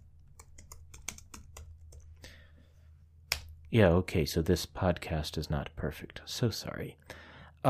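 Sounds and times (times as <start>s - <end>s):
typing on a computer keyboard: 0.2s - 2.2s
speech: 3.7s - 7.6s.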